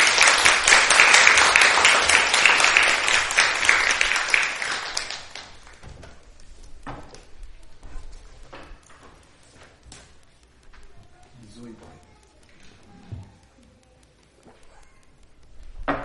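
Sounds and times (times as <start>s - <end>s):
sustained applause from a sizable crowd: 0.0s - 5.8s.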